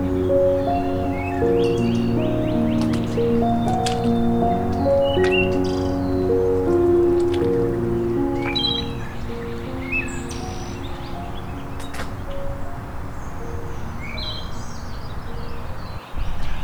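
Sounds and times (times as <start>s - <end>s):
steady outdoor hiss of wind or running water: 0.0s - 16.6s
wood thrush song: 0.0s - 16.6s.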